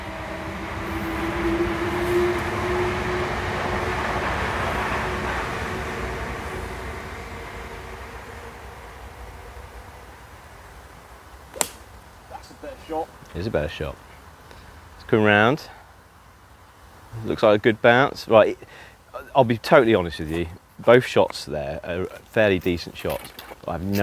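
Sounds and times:
train rumbling past on the railway: 0.0s - 11.4s
single sharp click: 11.5s - 11.8s
speech: 12.8s - 14.1s, 15.1s - 15.8s, 17.2s - 24.0s.

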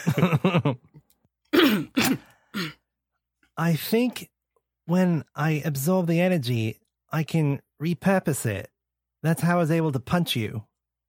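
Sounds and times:
speech: 0.1s - 0.8s, 3.6s - 4.3s, 4.9s - 10.7s
quick run of voiced throaty bursts: 1.5s - 2.8s.

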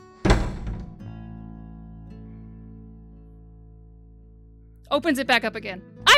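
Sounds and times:
bedroom door slamming shut: 0.2s - 1.1s
speech: 4.9s - 6.1s.

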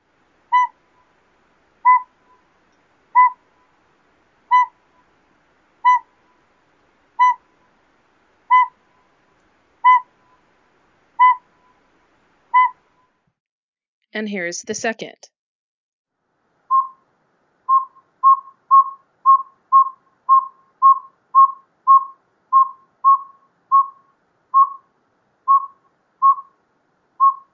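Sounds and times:
northern pygmy owl single hollow toots: 0.5s - 1.1s, 1.8s - 2.5s, 3.1s - 3.7s, 4.5s - 5.1s, 5.8s - 6.4s, 7.2s - 7.6s, 8.5s - 9.1s, 9.8s - 10.4s, 11.2s - 11.8s, 12.5s - 13.1s, 16.7s - 17.0s, 17.7s - 24.9s, 25.5s - 26.6s, 27.2s - 27.5s
speech: 14.1s - 15.4s.

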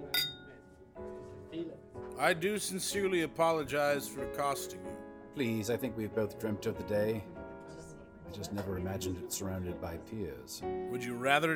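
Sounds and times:
glasses clinking in a toast: 0.0s - 0.6s
speech: 2.2s - 7.3s, 8.3s - 11.5s.

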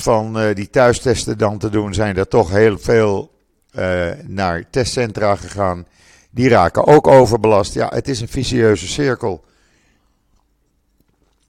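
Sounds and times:
speech: 0.0s - 9.5s
quiet room hum: 0.0s - 11.4s
person sipping water: 10.2s - 11.4s.

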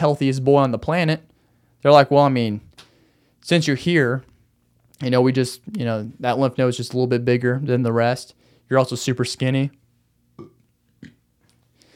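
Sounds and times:
speech: 0.0s - 2.7s, 3.4s - 4.3s, 5.0s - 9.8s
person burping: 10.4s - 11.2s.

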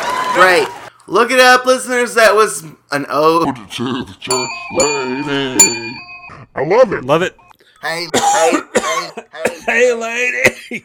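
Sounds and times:
speech: 0.4s - 10.8s
person clearing throat: 8.1s - 9.7s.

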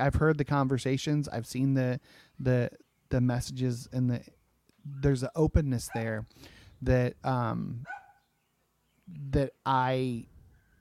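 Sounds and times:
speech: 0.0s - 8.0s, 9.1s - 10.3s
dog barking: 7.8s - 8.2s.

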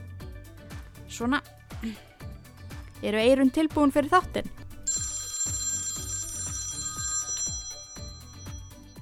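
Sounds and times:
speech: 1.1s - 2.1s, 3.0s - 4.6s
mobile phone electronic ringtone: 4.5s - 9.0s.

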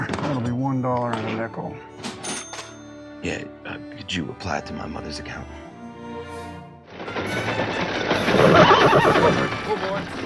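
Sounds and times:
speech: 0.8s - 2.0s, 3.2s - 5.6s, 8.8s - 10.2s
horse whinnying loudly: 7.4s - 9.8s.

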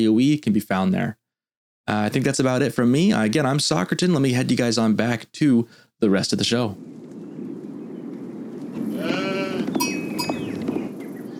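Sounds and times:
speech: 0.0s - 1.2s, 1.9s - 7.1s
sheep bleating: 8.9s - 9.8s.

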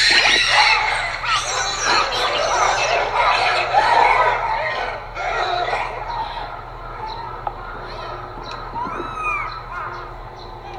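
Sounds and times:
Japanese macaques screaming and chattering: 0.0s - 10.7s
laughter: 0.0s - 10.7s.

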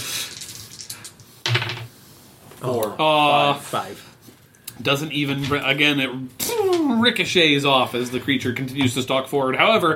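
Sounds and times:
dice rattling across a hard tabletop: 0.4s - 1.9s
speech: 2.6s - 4.1s, 4.8s - 6.4s, 7.0s - 9.9s.

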